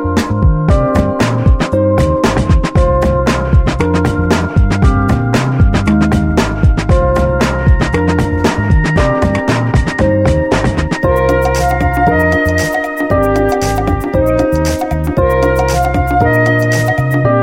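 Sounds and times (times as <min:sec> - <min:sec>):
orchestral music: 0:00.1 - 0:17.3.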